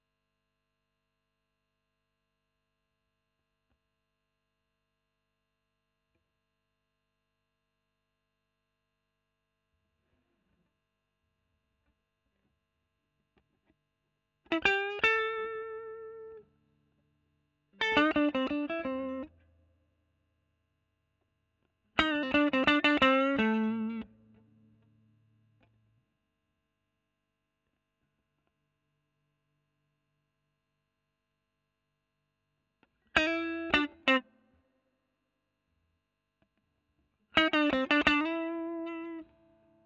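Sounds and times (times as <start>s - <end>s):
overdriven electric guitar: 14.5s - 16.5s, 17.8s - 19.4s, 22.0s - 24.5s, 33.1s - 34.3s, 37.4s - 39.8s.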